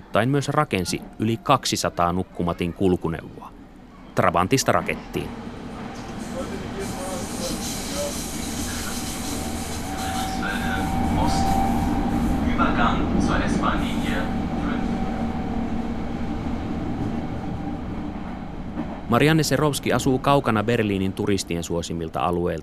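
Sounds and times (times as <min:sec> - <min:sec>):
indistinct voices murmuring: 0:00.0 - 0:17.0
rumble and hiss inside a moving S-Bahn commuter train in Berlin: 0:00.0 - 0:22.6
speech: 0:00.1 - 0:03.6, 0:04.2 - 0:05.5, 0:19.1 - 0:22.6
faint mechanical whine of commuter train: 0:03.5 - 0:22.6.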